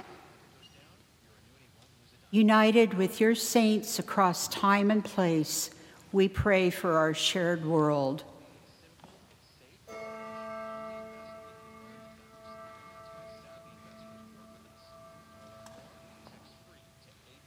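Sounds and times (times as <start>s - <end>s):
low murmur: 0.0s - 17.4s
speech: 2.3s - 8.3s
church bell tolling: 9.9s - 17.2s.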